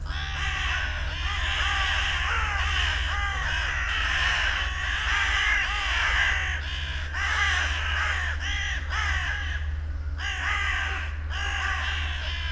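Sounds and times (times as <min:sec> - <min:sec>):
Carrion Crow Corvus corone flock cawing: 0:00.0 - 0:12.5
low droning hum: 0:00.0 - 0:12.5.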